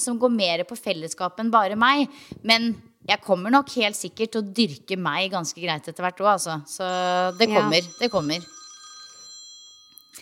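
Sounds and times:
speech: 0:00.0 - 0:08.6
telephone ringing with a steady electronic bell tone: 0:06.9 - 0:10.2.

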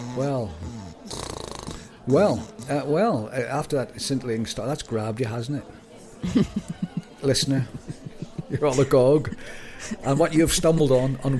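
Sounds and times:
person imitating snoring: 0:00.0 - 0:02.6
speech: 0:00.2 - 0:01.3, 0:02.1 - 0:07.9, 0:08.5 - 0:11.3
laughter: 0:06.2 - 0:11.3.

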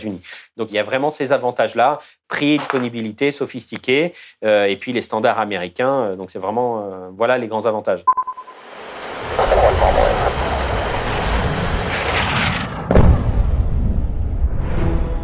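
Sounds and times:
speech: 0:00.0 - 0:08.6
loud sustained fighter jet engine roar: 0:08.4 - 0:12.9
rising whoosh: 0:08.5 - 0:14.8
heavy booming hit: 0:12.1 - 0:14.5.

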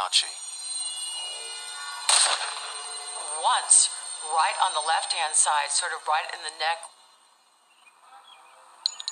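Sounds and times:
steady high-pitched hum: 0:00.0 - 0:07.7
speech: 0:00.1 - 0:00.5, 0:02.2 - 0:07.0
gunshot: 0:02.1 - 0:02.7.

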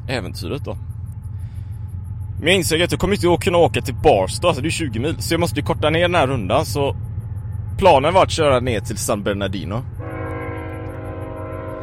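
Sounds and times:
faint rhythmic ticking: 0:00.0 - 0:11.8
low rumble of the train running: 0:00.0 - 0:11.8
speech: 0:00.1 - 0:00.9, 0:02.4 - 0:07.0, 0:07.8 - 0:09.9
train horn blowing in the desert: 0:10.0 - 0:11.8.

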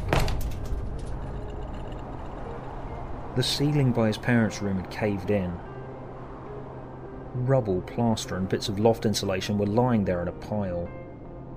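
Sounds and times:
bedroom door pulled open with rattling and scrape: 0:00.0 - 0:02.9
low rumble of the room: 0:00.0 - 0:08.9
speech: 0:03.4 - 0:05.7, 0:07.4 - 0:11.0.

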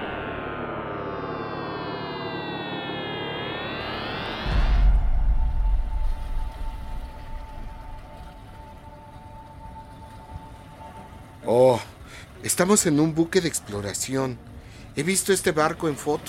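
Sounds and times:
siren-like electronic tone in a time travel sound effect: 0:00.0 - 0:11.4
deep boom and rumbling wash: 0:04.3 - 0:09.4
speech: 0:11.5 - 0:16.2.

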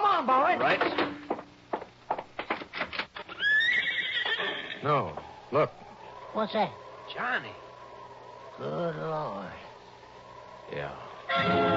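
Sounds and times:
speech: 0:00.2 - 0:01.2, 0:04.8 - 0:07.6, 0:08.6 - 0:09.6, 0:10.7 - 0:11.7
horse whinnying outside: 0:03.3 - 0:05.4.

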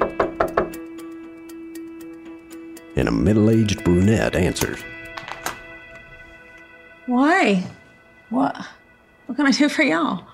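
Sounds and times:
knocking on a door: 0:00.0 - 0:00.9
speech: 0:03.0 - 0:05.0, 0:07.1 - 0:10.3.

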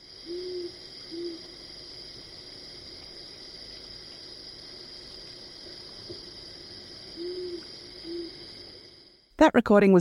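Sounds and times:
high-pitched insect drone: 0:00.0 - 0:09.2
rufous owl hooting: 0:00.1 - 0:01.6, 0:07.1 - 0:08.6
speech: 0:09.4 - 0:10.0.

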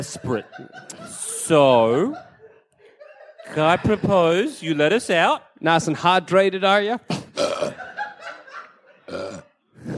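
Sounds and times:
speech: 0:00.0 - 0:02.3, 0:03.5 - 0:07.8
laughter: 0:00.0 - 0:04.7, 0:07.1 - 0:09.2
loud drawn-out belch from drinking carbonated water: 0:07.1 - 0:07.8, 0:09.1 - 0:09.9.

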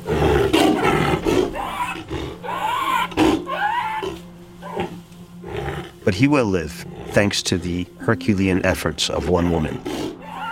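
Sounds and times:
hoarse raspy roar from an animal suffering from gastroenteritis: 0:00.0 - 0:07.8, 0:09.6 - 0:10.5
speech: 0:06.1 - 0:10.1.

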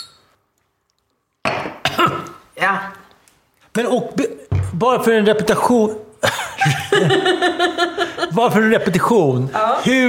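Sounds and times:
glasses clinking together in a toast: 0:00.0 - 0:00.4, 0:01.4 - 0:02.3
speech: 0:02.0 - 0:03.0, 0:03.8 - 0:10.0
laughter: 0:06.2 - 0:08.6.

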